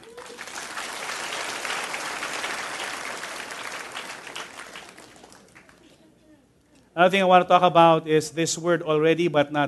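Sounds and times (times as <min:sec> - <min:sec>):
room full of people applauding: 0:00.0 - 0:05.8
speech: 0:07.0 - 0:09.6.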